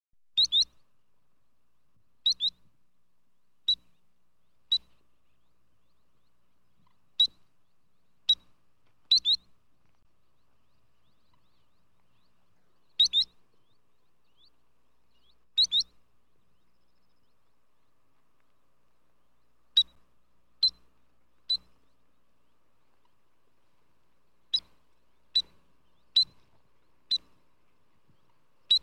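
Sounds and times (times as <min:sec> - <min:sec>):
sandpiper calling: 0:00.4 - 0:00.8, 0:02.2 - 0:02.6, 0:04.6 - 0:07.5, 0:09.1 - 0:09.5, 0:10.4 - 0:17.4, 0:19.7 - 0:22.0, 0:24.5 - 0:28.8.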